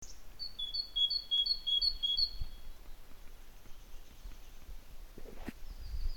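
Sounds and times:
great tit Parus major singing: 0.0 - 4.7, 5.6 - 6.1
background hiss: 0.0 - 6.1.

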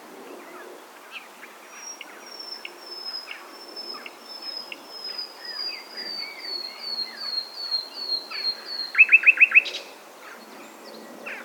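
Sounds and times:
common nightingale Luscinia megarhynchos song: 1.8 - 9.9.

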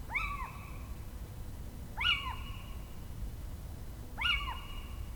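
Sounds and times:
Little owl Athene noctua giving plaintive mewing calls: 0.1 - 0.9, 2.0 - 2.9, 4.2 - 5.1.

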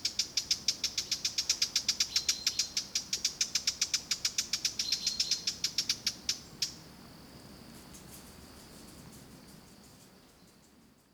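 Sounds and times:
faint background hiss: 0.0 - 11.1
Eurasian blackcap Sylvia atricapilla tacking clicks: 0.2 - 4.8.

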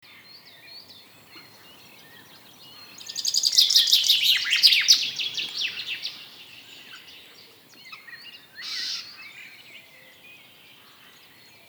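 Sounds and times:
Common chaffinch singing a rapid cascading phrase: 0.9 - 7.3.

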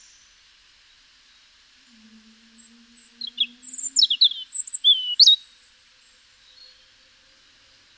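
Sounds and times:
faint low hum: 0.0 - 7.9
European robin singing, Erithacus rubecula: 2.1 - 5.5.

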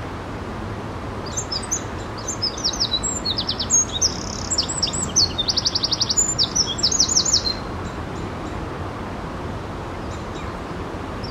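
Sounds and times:
soft rushing background noise: 0.0 - 11.2
Eurasian wren song with shrill notes and rapid trills: 1.3 - 7.7.

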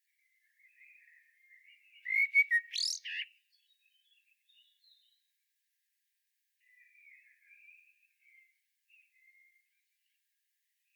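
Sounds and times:
common blackbird Turdus merula singing: 1.9 - 5.2.

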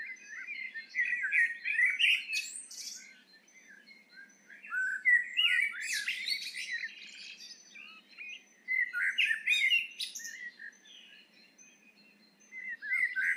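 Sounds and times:
Eurasian blackbird singing: 0.0 - 13.3.

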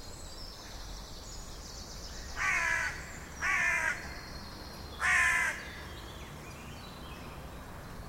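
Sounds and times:
faint background noise: 0.0 - 8.0
carrion crow rasping caws: 2.4 - 4.2, 5.0 - 5.7.

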